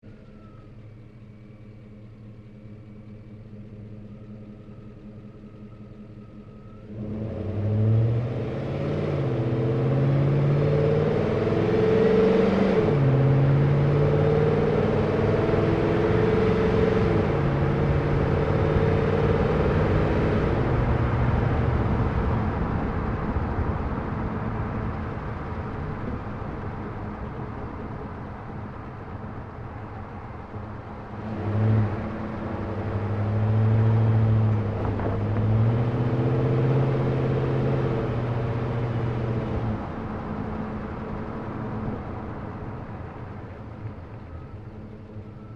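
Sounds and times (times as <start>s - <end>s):
2010 GMC Savana truck driving fast through corners, onboard: 4.8s - 45.5s.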